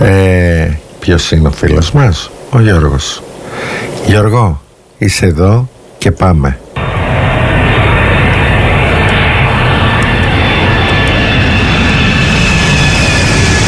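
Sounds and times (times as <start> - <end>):
speech: 1.1 - 6.6
airplane landing on a runway: 6.8 - 13.6.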